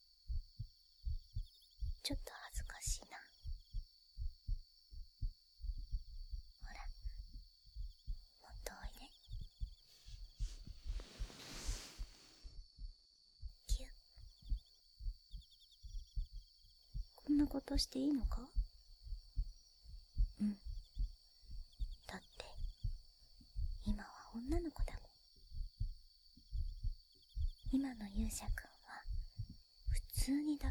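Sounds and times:
heartbeat thumping: 0:00.2 - 0:30.6
speech: 0:02.1 - 0:03.4, 0:17.4 - 0:18.6, 0:20.4 - 0:20.7, 0:27.9 - 0:28.7, 0:30.3 - 0:30.6
soft voice speaking: 0:08.4 - 0:09.1, 0:13.7 - 0:13.9, 0:17.2 - 0:18.5, 0:23.8 - 0:25.0, 0:27.7 - 0:29.0, 0:29.9 - 0:30.6
faint rustling: 0:09.8 - 0:12.5.

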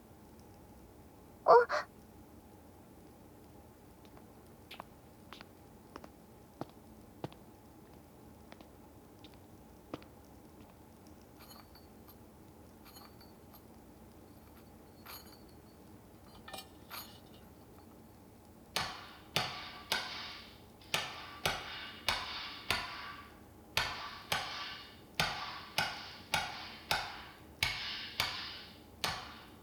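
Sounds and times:
hammer striking a kitchen knife blade during forging: 0:18.8 - 0:20.4, 0:21.0 - 0:29.6.

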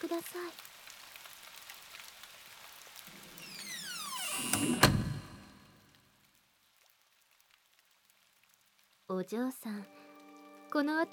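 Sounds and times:
speech: 0:00.0 - 0:00.7, 0:09.1 - 0:10.0, 0:10.7 - 0:11.1
steady rain pattering at night: 0:00.0 - 0:03.5, 0:05.6 - 0:11.1
sliding door grinding and rumbling open: 0:03.1 - 0:06.0.

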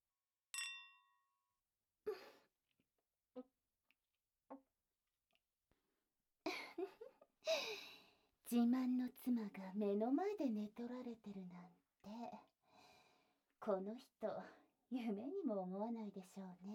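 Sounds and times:
glasses clinking in a toast: 0:00.6 - 0:01.2
speech: 0:08.5 - 0:12.4, 0:13.6 - 0:16.7.

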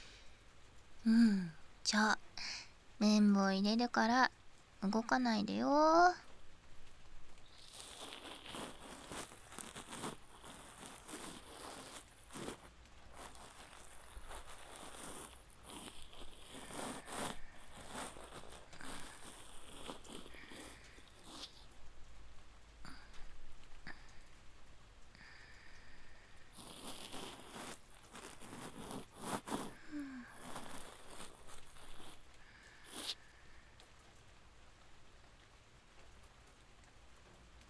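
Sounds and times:
steady rain falling: 0:00.0 - 0:37.6
speech: 0:01.0 - 0:02.2, 0:03.0 - 0:06.2
uneven rustling bursts: 0:07.4 - 0:21.7, 0:26.5 - 0:33.2.

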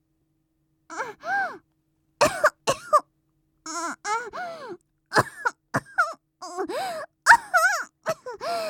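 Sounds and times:
sick woman coughing: 0:02.2 - 0:03.1, 0:05.1 - 0:06.7, 0:07.3 - 0:08.4.

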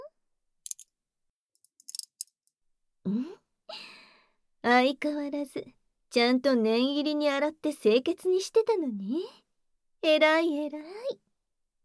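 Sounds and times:
key turning in small lock: 0:01.7 - 0:02.3
speech: 0:04.7 - 0:09.4, 0:10.0 - 0:11.2.

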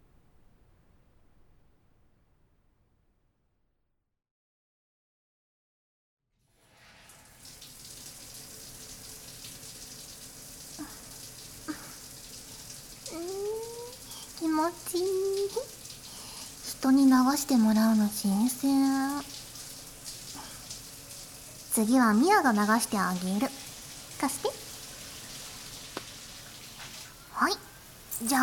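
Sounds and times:
shower water running: 0:06.4 - 0:28.4
speech: 0:14.7 - 0:15.8, 0:16.8 - 0:19.4, 0:21.8 - 0:23.6, 0:24.2 - 0:24.6, 0:28.2 - 0:28.4.

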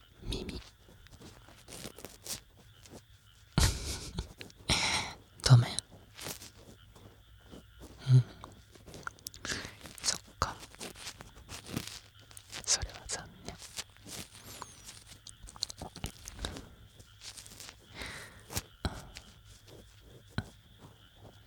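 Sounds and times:
biting and chewing food: 0:00.0 - 0:21.4
soft rustling: 0:00.0 - 0:21.4.

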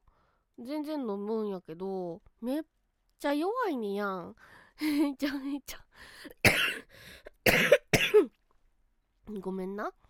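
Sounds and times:
speech: 0:00.6 - 0:07.8, 0:09.3 - 0:10.0
person having a harsh coughing fit: 0:06.4 - 0:08.4.

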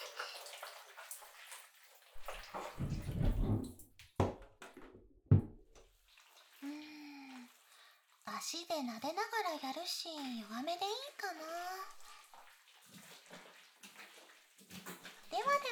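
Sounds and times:
shower water running: 0:00.0 - 0:03.9, 0:05.8 - 0:15.7
handling knocks and thumps: 0:02.7 - 0:05.8
speech: 0:08.5 - 0:12.0.

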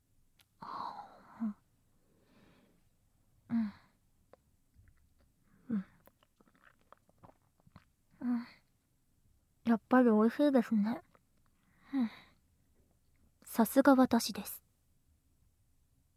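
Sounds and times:
speech: 0:01.4 - 0:01.6, 0:10.0 - 0:11.1, 0:12.0 - 0:12.3, 0:13.6 - 0:14.6
person chewing and biting a sweet dessert: 0:05.9 - 0:08.0.

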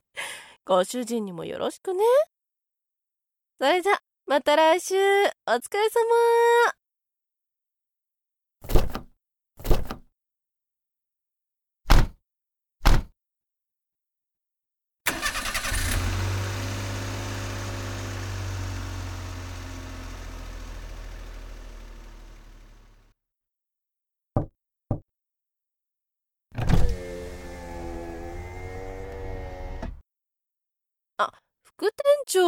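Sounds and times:
speech: 0:00.7 - 0:02.3, 0:03.6 - 0:06.8, 0:31.2 - 0:32.4
sharp knocks: 0:12.9 - 0:13.1
car engine cranking, starting and idling: 0:15.1 - 0:23.2, 0:26.8 - 0:30.0.

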